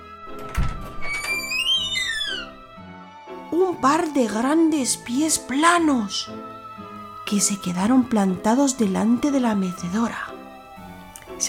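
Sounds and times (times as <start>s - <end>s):
door opening thunk: 0.3s - 2.5s
creaking door hinge: 0.3s - 2.7s
speech: 3.6s - 6.5s, 7.3s - 10.3s.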